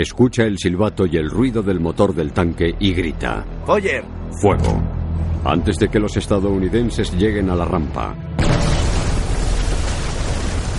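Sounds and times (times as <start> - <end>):
speech: 0.0 - 8.7
battlefield explosion shaking the ground and throwing debris: 8.4 - 10.7.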